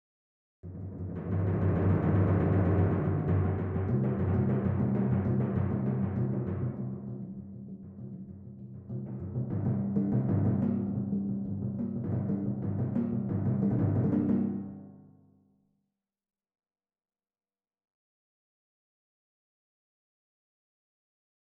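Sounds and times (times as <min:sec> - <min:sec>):
timpani in a film score: 0:00.7 - 0:14.9.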